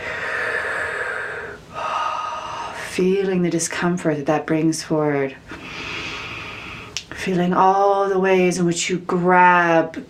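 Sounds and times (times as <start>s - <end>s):
slow deep breath: 0.0s - 2.8s, 5.5s - 7.0s
speech: 3.0s - 5.8s, 7.2s - 10.0s.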